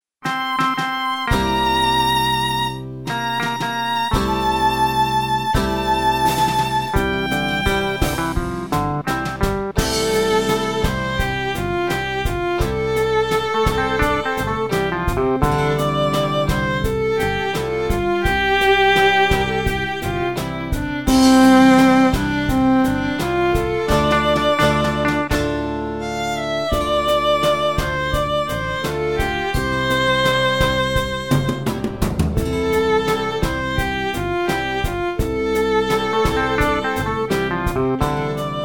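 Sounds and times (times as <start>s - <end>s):
violin playing in F major: 0.2s - 9.1s, 9.8s - 38.6s.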